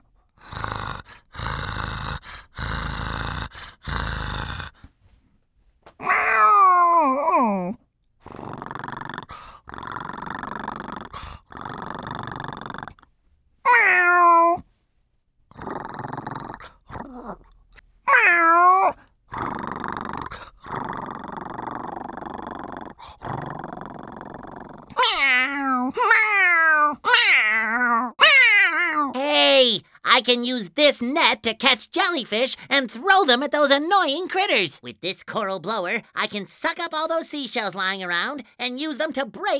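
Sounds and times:
cat yowling: 6.0 - 7.8, 13.7 - 14.6, 18.1 - 19.0, 25.0 - 29.6
speech: 30.3 - 39.5.

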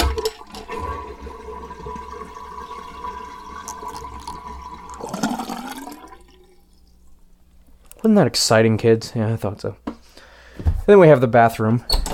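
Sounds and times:
water filling a bathroom sink: 0.0 - 7.2
speech: 8.0 - 9.8, 10.9 - 12.0.

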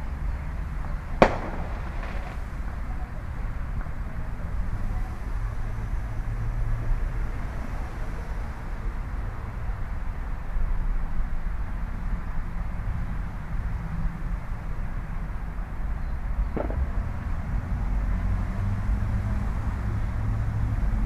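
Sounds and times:
road and freeway traffic rumble: 0.0 - 21.0
fainter firework pop: 1.2 - 2.4, 16.5 - 17.3
neighborhood firework bang: 1.2 - 2.6, 16.5 - 17.8.

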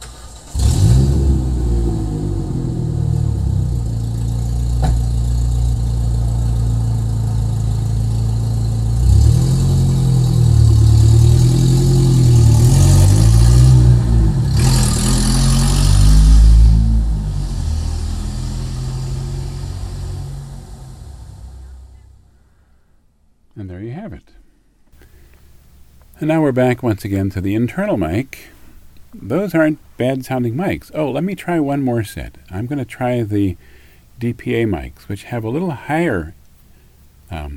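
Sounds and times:
truck engine starting, idling and revving while driving: 0.0 - 22.2
speech: 26.2 - 28.6, 29.2 - 36.4, 37.3 - 37.5.

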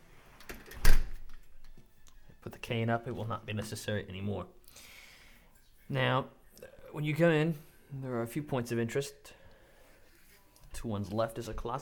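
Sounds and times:
large steel front door creaking: 0.4 - 1.4
large steel front door of a house shutting: 0.6 - 1.2
speech: 2.6 - 4.9, 5.9 - 9.4, 10.8 - 11.8.

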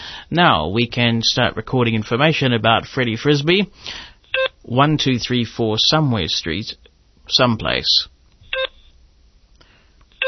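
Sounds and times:
speech: 0.3 - 8.1
short bright keypad tones while keying a business phone number: 8.5 - 8.9.

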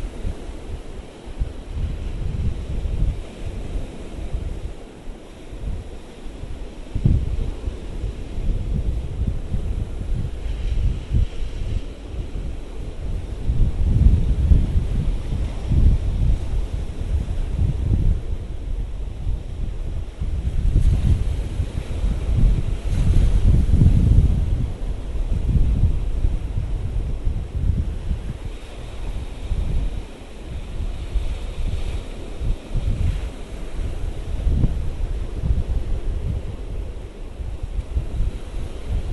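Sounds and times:
steady wind buffeting the microphone: 0.0 - 39.1
white sea waves breaking on the beach: 0.0 - 39.1.

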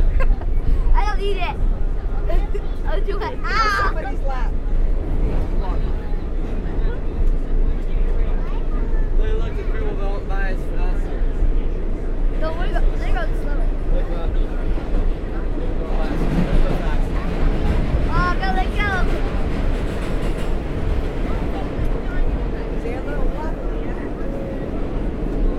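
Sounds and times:
laughter: 0.0 - 0.9
New York City subway train rumbling from inside the car: 0.0 - 25.5
faint voices inside subway car: 0.0 - 25.5.

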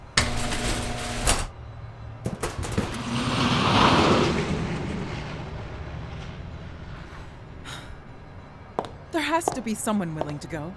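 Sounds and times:
train rolling as it moves off: 0.0 - 10.5
train doors sliding shut with mechanical thuds: 0.1 - 1.5
speech: 9.3 - 10.7.

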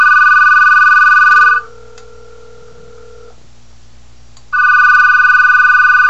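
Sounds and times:
outgoing call to a Skype-in number ringing over a speakerphone: 0.0 - 3.3, 4.5 - 6.0.

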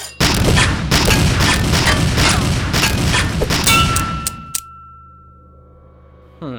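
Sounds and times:
dense volley of rapid gunshots: 0.0 - 4.5
bullets from a gun hitting a metal shovel: 0.0 - 4.7
sustained metallic ringing tone from a struck shovel: 0.0 - 6.3.

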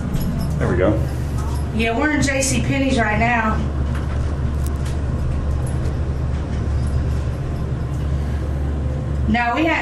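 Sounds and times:
moving elevator cab rumble in a department store: 0.0 - 9.7
speech: 0.6 - 3.8, 9.3 - 9.7.

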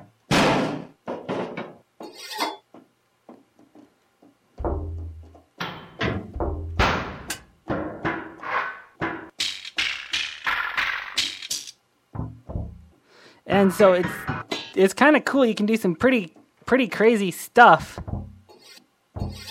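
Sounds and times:
objects being banged in a basement: 0.3 - 1.8, 4.6 - 11.6, 13.7 - 14.8, 19.2 - 19.4
speech: 13.6 - 18.0.

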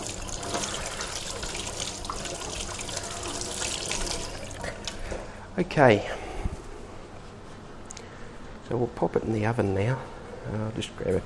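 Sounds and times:
running tap water at a kitchen sink while hands are washed: 0.0 - 5.2
speech: 5.6 - 6.2, 8.7 - 11.2.

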